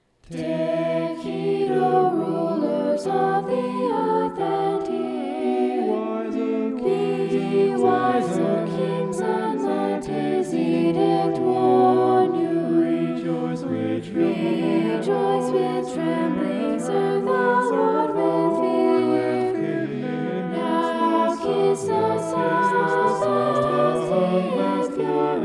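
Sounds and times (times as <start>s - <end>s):
polyphonic vocals in E minor: 0.2s - 25.4s.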